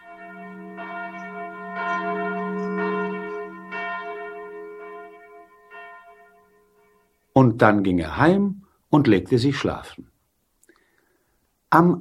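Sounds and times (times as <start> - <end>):
church bell ringing: 0.0 - 7.4
speech: 7.4 - 10.1, 11.7 - 11.9.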